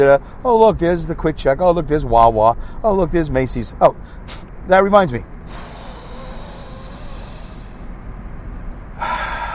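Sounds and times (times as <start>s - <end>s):
speech: 0.0s - 5.6s
deep breathing, inhaling and exhaling: 5.4s - 8.0s, 9.0s - 9.5s.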